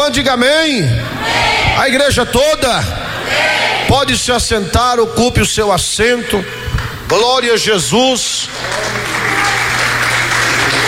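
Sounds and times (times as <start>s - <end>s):
speech: 0.1s - 9.2s
church congregation applauding together: 8.5s - 10.8s.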